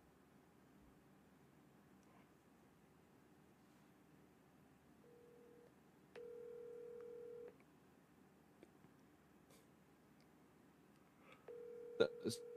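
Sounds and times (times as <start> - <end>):
telephone ringing for an incoming call: 5.1 - 7.5, 11.5 - 12.5.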